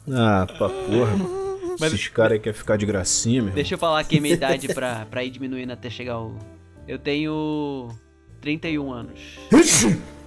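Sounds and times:
speech: 0:00.1 - 0:10.2
laughter: 0:04.1 - 0:05.0
sharp sneeze: 0:09.5 - 0:10.2.

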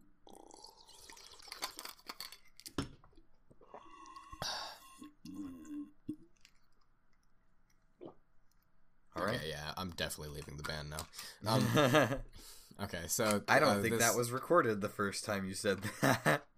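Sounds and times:
person sipping water: 0:00.2 - 0:08.7
person swallowing: 0:03.5 - 0:06.6, 0:08.0 - 0:08.2
speech: 0:10.0 - 0:16.5.

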